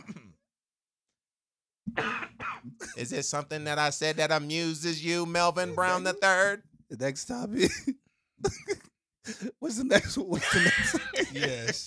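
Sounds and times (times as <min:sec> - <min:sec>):
person coughing: 0:02.0 - 0:03.0
speech: 0:02.7 - 0:11.8
laughter: 0:10.3 - 0:11.8.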